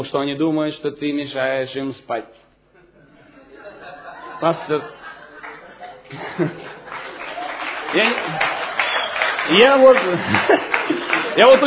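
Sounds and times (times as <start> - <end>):
speech: 0.0 - 2.4, 4.4 - 5.0, 6.1 - 6.8, 7.9 - 8.5, 9.5 - 11.6
people laughing: 2.8 - 11.6
audience applause: 5.4 - 11.6.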